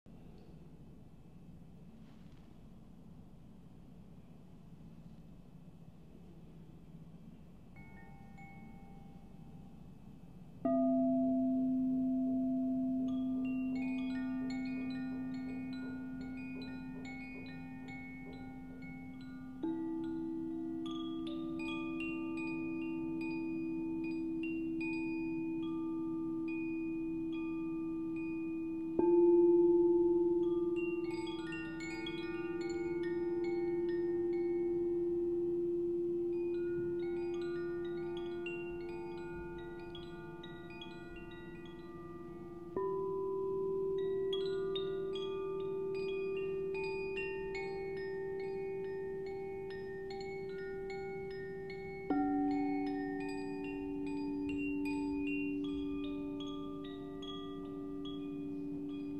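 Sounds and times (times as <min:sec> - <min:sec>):
singing bowl ringing for meditation: 0:07.7 - 0:10.0, 0:10.6 - 0:59.1.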